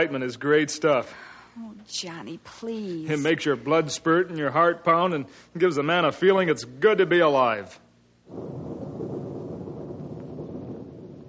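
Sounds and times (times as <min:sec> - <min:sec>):
speech: 0:00.0 - 0:08.7
thunder rumbling as a storm approaches: 0:08.3 - 0:11.2.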